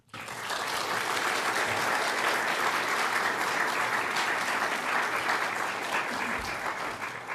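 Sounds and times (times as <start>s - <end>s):
room full of people clapping: 0.0s - 7.3s.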